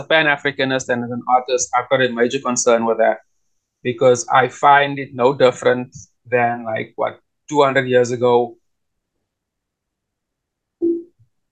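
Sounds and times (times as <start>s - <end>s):
speech: 0.0s - 8.6s
short electronic notification tone from a device: 10.8s - 11.1s.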